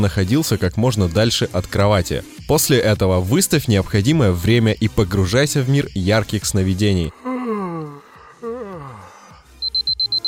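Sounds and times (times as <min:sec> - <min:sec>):
speech: 0:00.0 - 0:07.2
drawn-out sleepy vocal sound: 0:07.1 - 0:09.6
alarm clock beeping with sharp high electronic beeps: 0:09.6 - 0:10.2.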